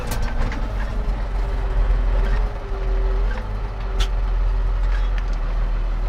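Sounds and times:
truck engine rumble driving along a field to a combine harvester to collect threshed maize: 0:00.0 - 0:06.0.

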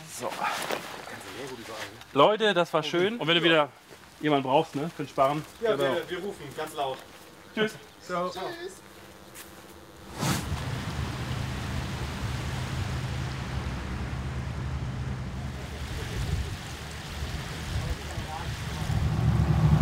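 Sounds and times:
speech: 0:00.2 - 0:08.9
boat engine drone leaving the Elbe side canal onto the Elbe river: 0:05.5 - 0:19.8
rushing water noise from the boat on the Elbe river: 0:10.4 - 0:19.8.

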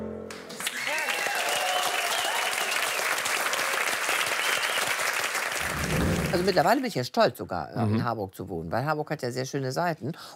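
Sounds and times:
sustained applause from a sizable audience: 0:00.3 - 0:06.8
cheers: 0:00.5 - 0:06.4
speech: 0:06.3 - 0:10.3.

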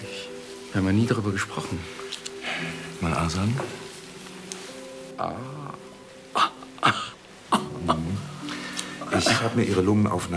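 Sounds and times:
speech: 0:00.7 - 0:02.0, 0:02.6 - 0:03.8, 0:05.2 - 0:07.1, 0:09.2 - 0:10.3
raspy coughs: 0:09.1 - 0:09.6.

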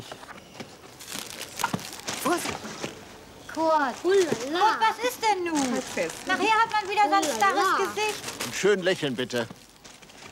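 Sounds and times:
shopping bags crinkling and rustling while being held: 0:01.0 - 0:02.8, 0:05.4 - 0:10.3
speech: 0:03.6 - 0:09.6.

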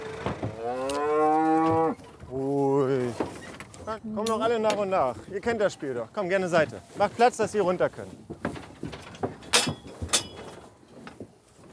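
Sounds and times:
Charolais mother cow mooing: 0:00.0 - 0:02.0
faint shuffling: 0:01.0 - 0:11.7
speech: 0:04.0 - 0:08.3.

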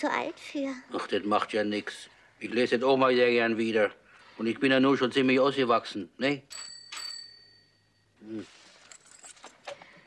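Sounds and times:
speech: 0:00.0 - 0:06.7, 0:08.2 - 0:08.6
bright bell ringing: 0:06.5 - 0:08.2.

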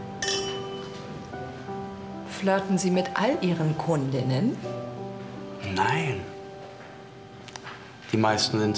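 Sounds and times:
glasses clinking in a toast: 0:00.2 - 0:01.0
speech: 0:02.4 - 0:04.9, 0:05.7 - 0:06.4, 0:08.1 - 0:08.7.

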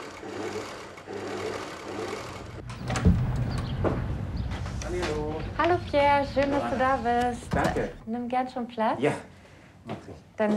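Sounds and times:
sewing machine running: 0:00.0 - 0:02.6
knock and clatter: 0:02.7 - 0:05.2
speech: 0:06.2 - 0:09.3, 0:10.4 - 0:10.5.

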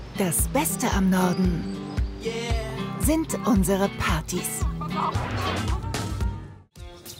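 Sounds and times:
speech: 0:00.2 - 0:05.8
hens clucking and squawking: 0:04.5 - 0:06.5.

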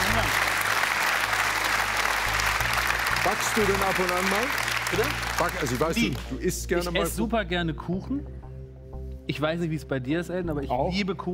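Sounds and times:
studio audience applause on a TV quiz show: 0:00.0 - 0:06.3
speech: 0:03.2 - 0:08.4, 0:09.3 - 0:11.3.

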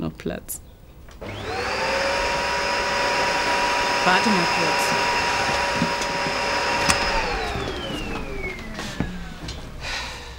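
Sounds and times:
speech: 0:00.2 - 0:01.4, 0:04.0 - 0:05.2
vacuum cleaner running: 0:01.2 - 0:10.3.

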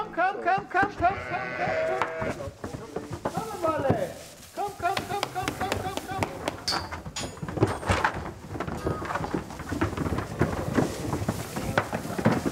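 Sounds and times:
people talking: 0:00.0 - 0:06.9, 0:11.5 - 0:12.5
rustling and thumps of sheep movement: 0:00.5 - 0:12.5
many pregnant sheep bleating in a freshly bedded barn: 0:01.0 - 0:02.4.

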